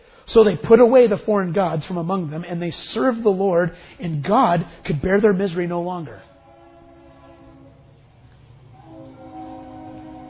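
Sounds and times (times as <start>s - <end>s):
speech: 0.3s - 6.3s
train rumbling past: 6.2s - 10.2s.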